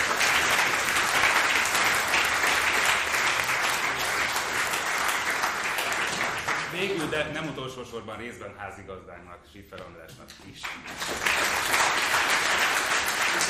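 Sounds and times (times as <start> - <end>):
audience applause: 0.0 - 7.2, 10.6 - 13.4
speech: 6.8 - 13.4.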